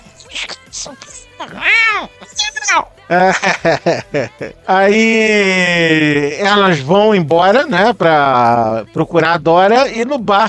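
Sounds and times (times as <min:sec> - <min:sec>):
human voice imitating a cat meowing: 0:00.3 - 0:02.8
speech: 0:00.4 - 0:10.4
laughter: 0:03.1 - 0:05.2.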